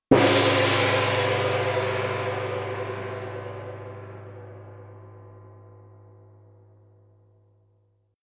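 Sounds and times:
gong hit: 0.1s - 7.0s.

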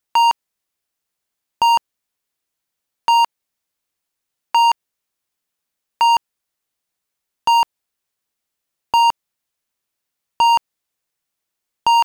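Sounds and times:
emergency medical kit heart monitor beeps: 0.2s - 0.4s, 3.1s - 3.3s, 4.6s - 4.8s, 6.0s - 6.2s, 9.0s - 9.2s, 11.9s - 12.0s.

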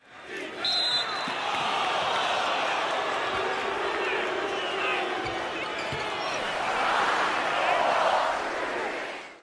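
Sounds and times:
basketball crowd cheering at a game: 0.0s - 9.4s.

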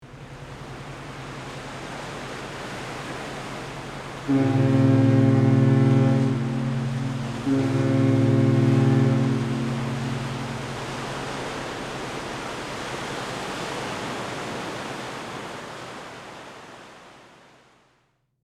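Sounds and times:
distant fog horn of a passing ship: 0.1s - 14.8s.

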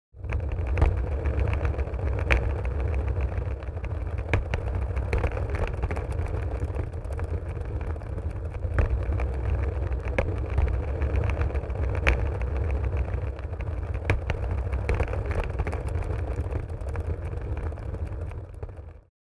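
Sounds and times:
suitcase dragging and rolling on wood floor: 0.2s - 19.0s.

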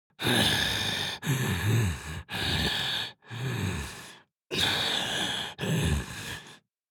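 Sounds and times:
heavy breathing anime villain vocalization: 0.2s - 6.6s.

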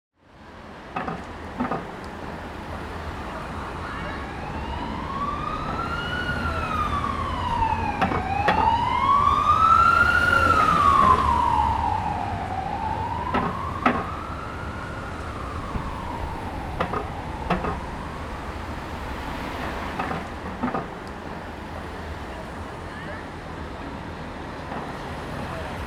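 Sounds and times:
city traffic: 0.2s - 25.8s
police car siren passing by in the city: 2.4s - 22.8s.

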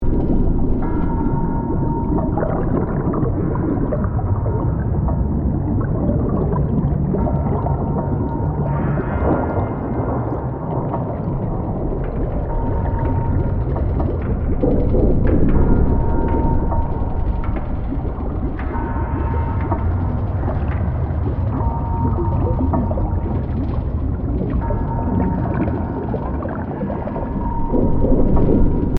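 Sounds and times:
underwater ambience at an abandoned shipwreck: 0.0s - 28.9s.

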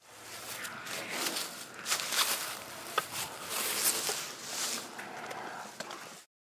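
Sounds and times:
calm wind through African elephant grass: 0.0s - 6.3s.

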